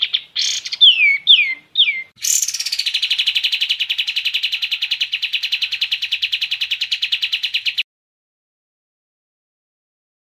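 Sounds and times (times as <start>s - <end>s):
Kapas tembak trilling: 0.0s - 7.8s.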